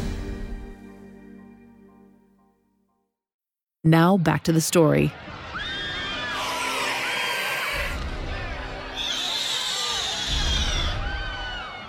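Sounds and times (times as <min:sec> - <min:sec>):
speech: 0:03.8 - 0:05.4
many people screaming and shouting: 0:05.1 - 0:11.8.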